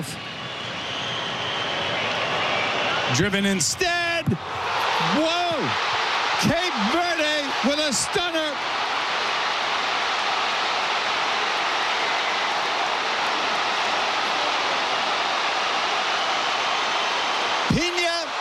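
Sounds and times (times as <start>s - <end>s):
football stadium crowd cheering after a long-range goal: 0.0s - 18.4s
speech: 3.1s - 7.0s, 7.6s - 8.8s.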